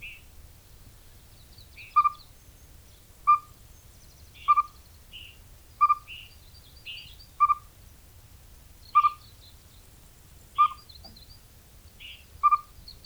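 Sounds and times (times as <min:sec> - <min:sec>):
Siberian chipmunk call in Wuerqihan: 0:01.8 - 0:02.3, 0:03.2 - 0:03.6, 0:04.4 - 0:04.8, 0:05.8 - 0:06.2, 0:07.4 - 0:07.7, 0:08.9 - 0:09.3, 0:10.6 - 0:10.9, 0:12.0 - 0:12.8.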